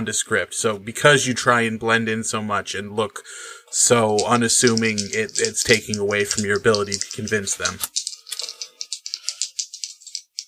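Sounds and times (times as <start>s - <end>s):
speech: 0.0s - 8.0s
two dice rattling as shaken in a hand or cup: 3.9s - 10.4s.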